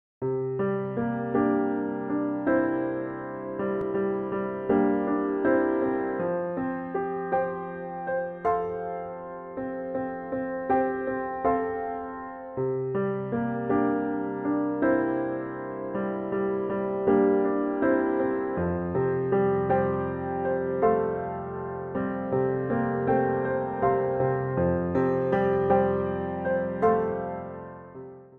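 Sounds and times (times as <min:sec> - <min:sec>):
piano: 0:00.2 - 0:28.3.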